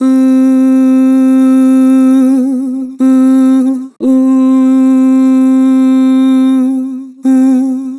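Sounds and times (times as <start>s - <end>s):
synthesized vocal ooh with vibrato: 0.0s - 7.9s.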